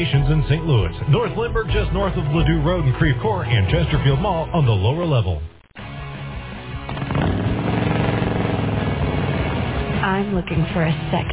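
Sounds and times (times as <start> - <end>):
speech: 0.0 - 5.6, 10.0 - 11.3
Harley-Davidson motorcycle engine revving: 6.6 - 11.3.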